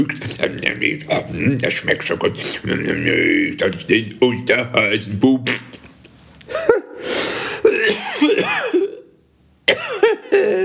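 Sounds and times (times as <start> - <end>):
speech: 0.0 - 5.8
person coughing from laughing: 7.6 - 10.6.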